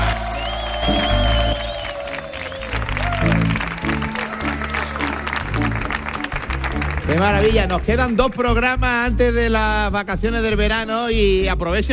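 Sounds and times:
crowd voices and shouts: 0:00.0 - 0:07.9
studio audience applauding at a live recording in an auditorium: 0:00.0 - 0:08.2
speech: 0:07.2 - 0:11.9.

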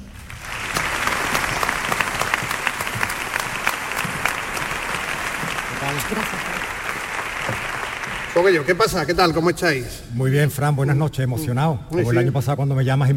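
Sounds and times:
audience applause: 0:00.0 - 0:09.5
speech: 0:06.1 - 0:06.6, 0:08.4 - 0:13.1.

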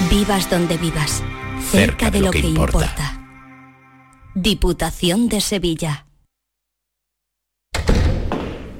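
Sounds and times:
speech: 0:00.1 - 0:03.1, 0:04.3 - 0:06.0
door swinging shut with a solid thud: 0:07.7 - 0:08.7.

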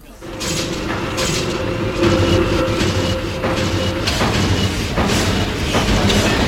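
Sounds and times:
sharp noise bursts: 0:00.0 - 0:06.4
train-like clatter and rattling wheels in a musique concrete piece: 0:00.0 - 0:06.4.

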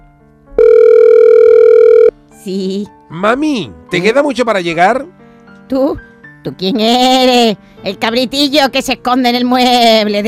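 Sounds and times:
steady telephone tone during a phone call: 0:00.6 - 0:02.1
speech: 0:02.4 - 0:10.2.

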